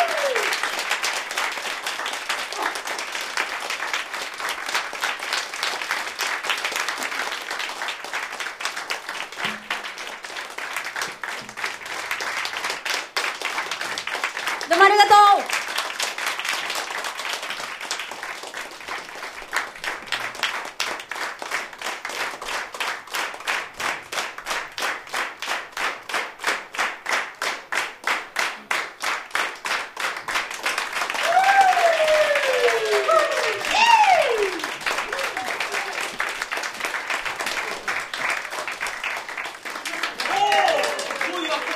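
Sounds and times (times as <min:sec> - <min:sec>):
scattered voices and whoops: 0:00.0 - 0:00.6, 0:31.2 - 0:36.2, 0:39.9 - 0:41.7
audience clapping in rhythmic unison: 0:00.0 - 0:41.7.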